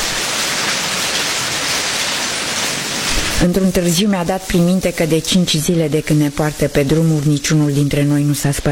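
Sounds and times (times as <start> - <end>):
steady rain falling: 0.0 - 8.7
speech: 3.4 - 8.7.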